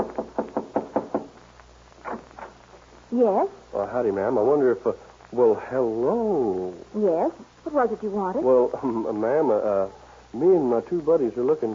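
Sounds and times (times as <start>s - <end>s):
knocking on the wooden door of a ranch house at night: 0.0s - 1.4s
speech: 3.1s - 11.7s.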